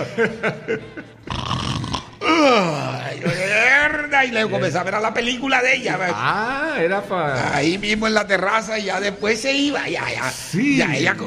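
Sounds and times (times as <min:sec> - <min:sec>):
laughter: 0:00.0 - 0:01.3, 0:03.0 - 0:03.9
speech: 0:00.0 - 0:01.8, 0:02.4 - 0:11.2
voice imitating a man's loud snoring turning into a lion-like roar: 0:01.2 - 0:03.2.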